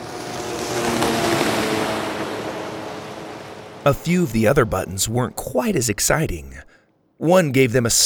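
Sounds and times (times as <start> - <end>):
wind: 0.0 - 5.3
boat engine droning on a mountain lake: 0.0 - 6.5
speech: 3.9 - 8.0.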